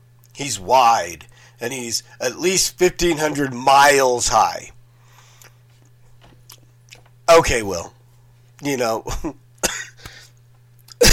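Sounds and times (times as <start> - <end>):
speech: 0.4 - 4.8, 7.4 - 8.0, 8.6 - 9.4
sharp cough against the microphone: 9.2 - 10.0, 10.9 - 11.1.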